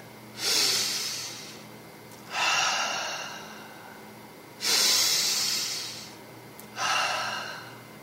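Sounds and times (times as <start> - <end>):
slow relaxed breathing: 0.4 - 8.0.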